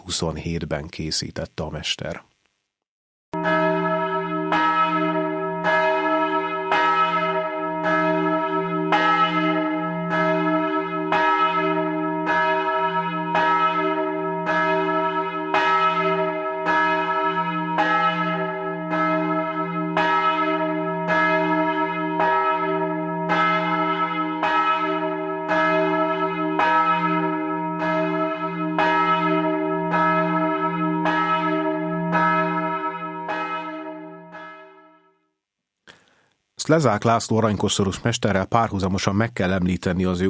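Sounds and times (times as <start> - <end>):
speech: 0.1 - 2.3, 36.7 - 40.2
large deep restored church bell struck by a top-striking hammer: 3.4 - 35.2.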